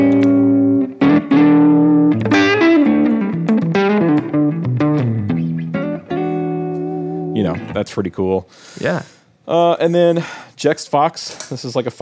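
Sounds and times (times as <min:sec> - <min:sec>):
sustained instrument chords with warped vinyl pitch drift and spring reverb: 0:00.0 - 0:07.8
speech: 0:07.8 - 0:11.9.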